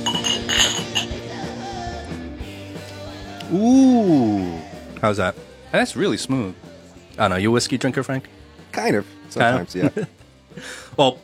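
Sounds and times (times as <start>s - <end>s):
whiskey glasses clinking in a toast: 0.0s - 1.2s
speech: 3.5s - 11.2s
laughter: 9.5s - 10.2s.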